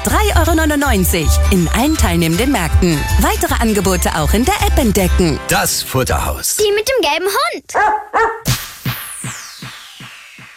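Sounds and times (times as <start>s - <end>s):
speech: 0.0s - 8.5s
dog barking: 7.8s - 8.5s.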